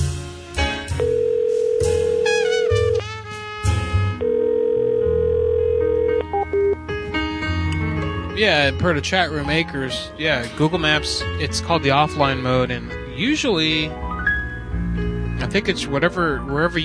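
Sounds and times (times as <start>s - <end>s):
busy musical background: 0.0s - 16.8s
telephone ringback tone, unanswered: 1.0s - 3.0s, 4.2s - 6.8s
speech: 8.4s - 14.0s, 15.4s - 16.8s.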